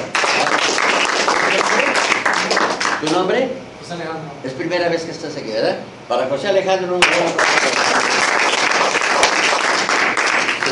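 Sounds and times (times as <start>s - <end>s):
audience applause: 0.0s - 3.0s, 7.1s - 10.7s
speech: 3.0s - 8.0s.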